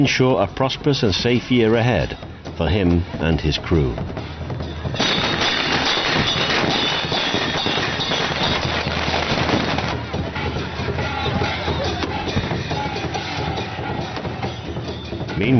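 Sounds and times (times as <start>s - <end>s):
speech: 0.0s - 5.2s, 15.4s - 15.5s
crowd noise: 0.0s - 15.5s
long string of firecrackers crackling: 4.9s - 13.5s.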